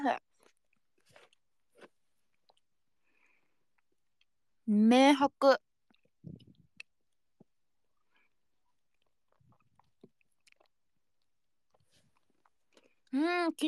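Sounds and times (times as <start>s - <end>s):
speech: 0.0s - 0.2s, 4.7s - 5.6s, 13.4s - 13.6s
wet chewing of gum: 0.2s - 2.8s, 5.8s - 13.1s.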